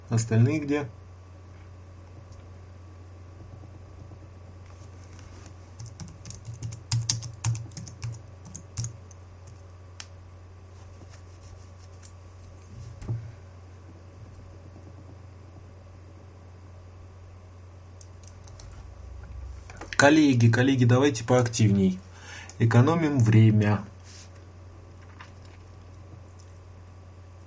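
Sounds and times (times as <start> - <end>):
steady low hum: 0.0 - 27.4
speech: 0.1 - 1.0, 20.0 - 23.9
computer keyboard typing: 5.8 - 9.6, 18.0 - 18.8.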